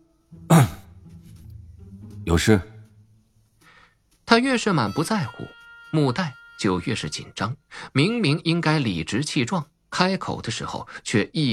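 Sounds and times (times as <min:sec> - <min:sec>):
person coughing lightly or clearing throat: 0:00.5 - 0:00.8
speech: 0:02.3 - 0:02.7, 0:04.4 - 0:11.5.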